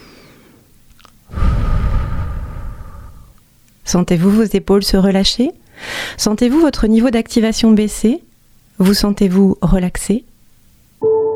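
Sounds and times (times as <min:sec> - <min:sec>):
person breathing in a relaxation exercise: 0:00.0 - 0:03.4, 0:05.7 - 0:06.2
speech: 0:03.9 - 0:10.3.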